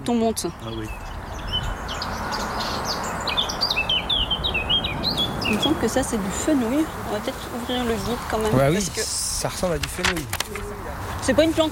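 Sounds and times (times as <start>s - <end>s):
Eurasian blackcap singing a warbling song: 0.0s - 8.5s
steady outdoor noise: 0.0s - 11.7s
speech: 0.1s - 1.8s, 5.1s - 11.7s.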